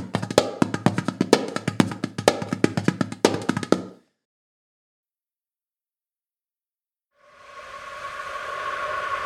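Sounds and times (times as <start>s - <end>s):
doumbek goblet drum playing a rhythm: 0.0s - 4.0s
soft breathy airy tone: 7.2s - 9.2s.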